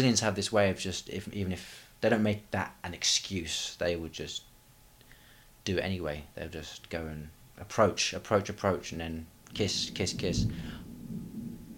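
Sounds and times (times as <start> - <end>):
speech: 0.0 - 4.5, 5.6 - 10.8
thunder rumbling outside: 9.5 - 11.7.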